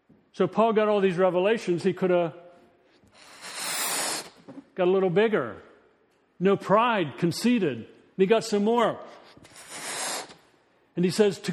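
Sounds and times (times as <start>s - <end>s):
speech: 0.4s - 2.4s, 4.8s - 5.7s, 6.4s - 9.1s, 11.0s - 11.5s
air blown into a balloon: 3.1s - 4.5s, 9.4s - 10.4s.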